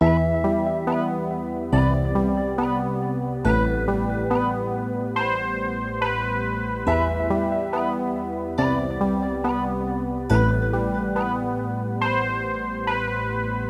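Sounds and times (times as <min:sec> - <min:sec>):
sad melody loop in E minor: 0:00.0 - 0:13.6.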